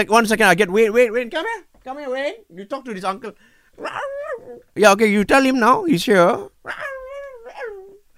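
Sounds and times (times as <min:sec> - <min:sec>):
speech: 0:00.0 - 0:06.9
dog whining: 0:03.8 - 0:04.8, 0:06.4 - 0:08.1.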